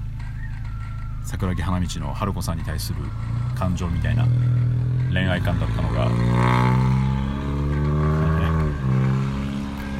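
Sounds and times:
speech: 1.3 - 6.9
car engine drone: 2.6 - 9.9.

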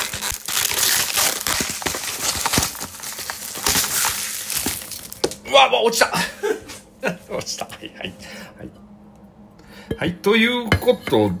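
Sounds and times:
plastic wrapper of an instant yakisoba package crinkling as it is pulled open: 0.0 - 5.5
speech: 5.5 - 8.8, 10.0 - 11.3.

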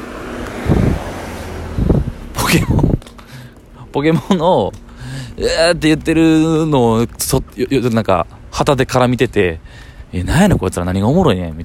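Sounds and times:
car passing by outdoors: 0.0 - 3.0
wind buffeting the microphone: 0.0 - 11.6
speech: 2.5 - 2.9, 3.9 - 11.6.

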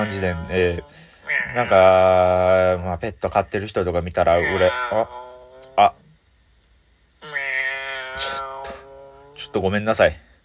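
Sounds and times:
stray cat meowing in the house: 0.0 - 2.1, 4.4 - 5.8, 7.2 - 9.6
speech: 0.0 - 5.2, 5.8 - 6.0, 9.5 - 10.2.

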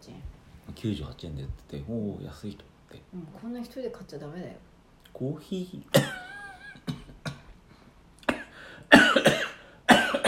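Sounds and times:
speech: 0.8 - 6.2
person coughing: 5.9 - 7.6, 8.2 - 10.2.

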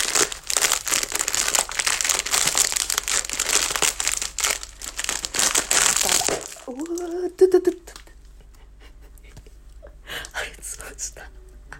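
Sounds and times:
butter cookies being crushed into crumbs while cooking: 0.0 - 7.2.

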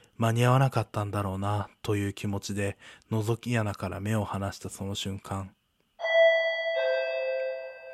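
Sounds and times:
speech: 0.2 - 5.6
doorbell chime ringing at an apartment front door: 6.0 - 7.9.

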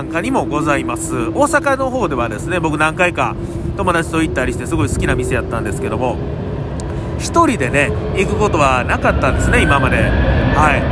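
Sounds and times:
speech: 0.0 - 6.5, 7.2 - 10.9
airplane engine roar flying overhead: 0.0 - 10.9.

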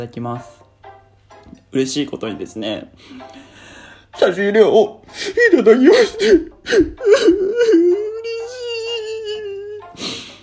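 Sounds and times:
speech: 0.0 - 0.6, 1.7 - 3.5, 4.2 - 8.0
person fake whimpering cry: 5.1 - 10.3.

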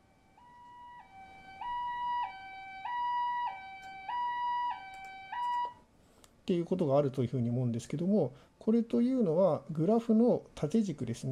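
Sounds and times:
ambulance siren in hi-lo pattern: 0.0 - 5.8
speech: 6.5 - 11.2.

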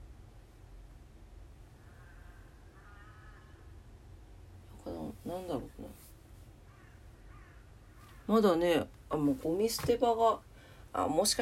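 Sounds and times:
steady low rumble: 0.0 - 11.4
crow cawing: 1.8 - 3.8, 6.6 - 8.2
speech: 5.2 - 6.0, 8.3 - 11.4.

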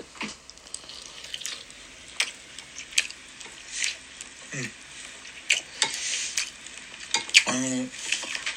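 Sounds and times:
chewing of a thick square rolled omelette with dashi and Korean seaweed: 0.2 - 8.5.

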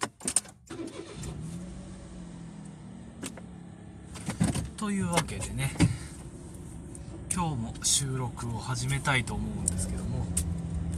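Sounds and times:
car engine starting: 0.0 - 10.9
speech: 4.8 - 6.0, 7.4 - 10.6.

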